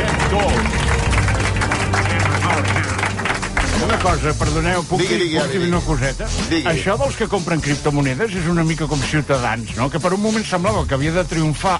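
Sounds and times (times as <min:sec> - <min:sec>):
audience applause: 0:00.0 - 0:04.6
speech: 0:00.3 - 0:00.8, 0:04.0 - 0:11.7.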